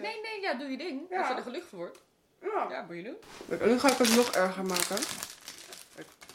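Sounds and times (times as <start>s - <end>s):
speech: 0.0s - 5.3s, 6.0s - 6.2s
plastic cookie packaging crinkling as a cookie is taken out: 3.5s - 6.3s.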